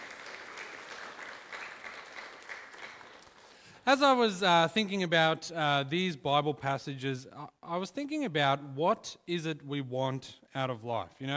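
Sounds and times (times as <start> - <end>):
audience applause: 0.0 - 3.8
speech: 3.9 - 11.3.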